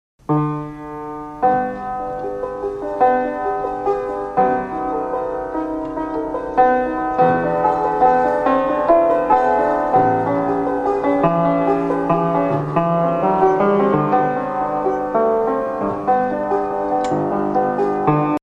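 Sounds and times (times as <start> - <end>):
square piano: 0.2 - 18.4.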